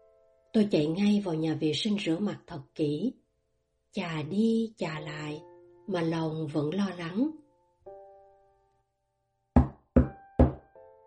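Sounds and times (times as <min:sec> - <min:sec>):
speech: 0:00.6 - 0:03.2, 0:03.9 - 0:07.4
knocking on a door: 0:09.6 - 0:10.8.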